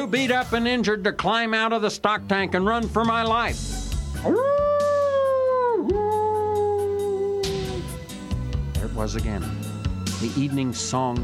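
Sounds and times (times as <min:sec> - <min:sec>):
speech: 0:00.0 - 0:04.6, 0:09.0 - 0:09.6, 0:10.2 - 0:11.2
coyotes howling: 0:04.2 - 0:08.1.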